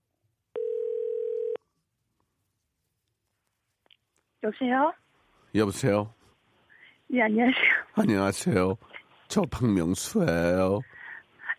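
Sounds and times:
telephone ringback tone while placing a call: 0.6s - 1.6s
speech: 4.4s - 6.2s, 7.1s - 11.0s.

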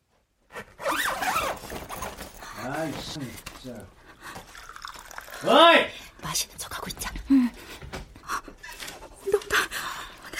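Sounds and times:
zipper of a vinyl wardrobe being opened: 0.8s - 2.0s
speech: 2.8s - 4.0s, 5.4s - 7.6s.

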